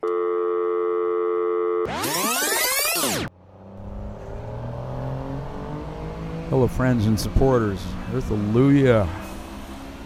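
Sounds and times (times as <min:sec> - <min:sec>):
steady electronic tones: 0:00.0 - 0:03.3
continuous low engine rumble of a big bus travelling at night: 0:03.3 - 0:10.0
speech: 0:06.5 - 0:09.2.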